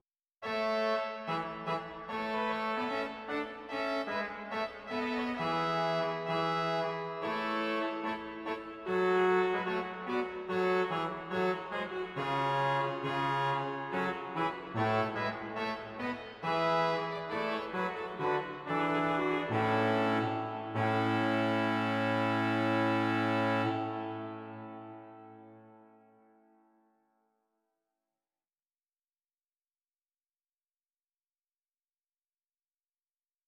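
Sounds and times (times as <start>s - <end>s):
Trompet 8 in Zwolle: 0.4s - 26.3s.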